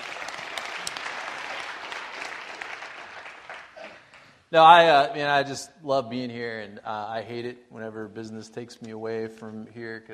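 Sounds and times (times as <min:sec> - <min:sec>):
audience applause at church: 0:00.0 - 0:04.4
speech: 0:04.5 - 0:10.1.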